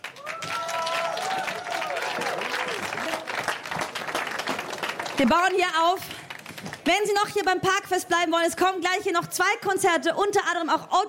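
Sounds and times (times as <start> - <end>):
faint voices and cheers: 0.0 - 3.4
crowd applauding: 0.0 - 6.9
speech: 5.2 - 6.1, 6.9 - 11.0.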